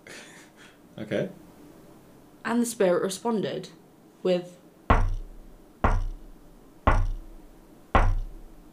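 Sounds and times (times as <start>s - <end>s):
speech: 1.0s - 1.4s, 2.4s - 4.6s
knocks on a wooden floorboard: 4.9s - 7.4s, 8.0s - 8.5s.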